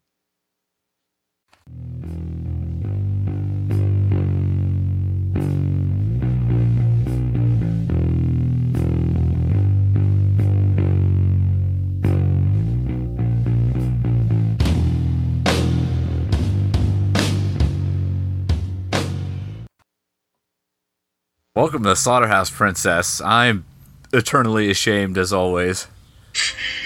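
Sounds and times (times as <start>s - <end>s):
instrumental podcast theme music with percussive beat, bass and chords: 1.7s - 19.7s
speech: 21.6s - 26.6s.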